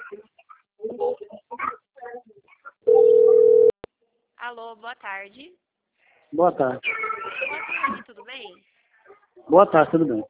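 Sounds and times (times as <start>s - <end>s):
telephone dial tone while a call is placed: 2.9s - 3.8s
speech: 4.5s - 5.7s, 6.3s - 8.7s, 9.5s - 10.2s.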